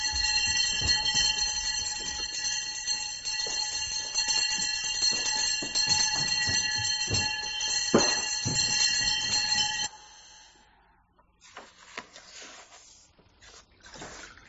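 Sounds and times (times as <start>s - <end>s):
monastery wake-up bell ringing: 0.0s - 10.6s.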